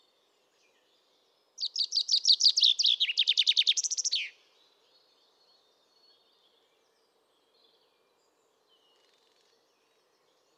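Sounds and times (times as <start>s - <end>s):
common chaffinch Fringilla coelebs singing: 1.6s - 4.4s.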